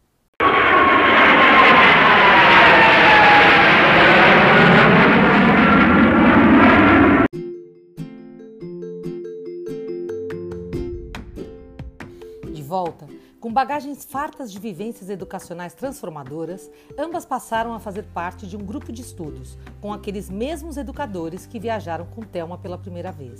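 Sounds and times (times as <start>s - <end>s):
airplane in flight roaring: 0.4s - 7.3s
soft melodic tune of electronic notes: 7.3s - 12.8s
speech: 13.6s - 23.3s.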